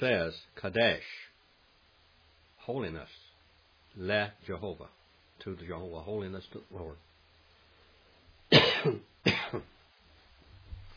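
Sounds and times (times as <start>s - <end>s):
speech: 0.0s - 1.3s, 2.7s - 3.2s, 4.0s - 7.1s, 8.5s - 9.8s
harsh coughs: 8.5s - 9.7s.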